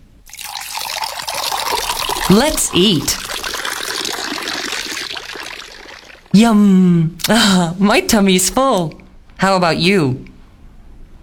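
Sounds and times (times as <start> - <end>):
water pouring into a container: 0.3 - 6.5
speech: 2.3 - 3.4, 6.3 - 10.3.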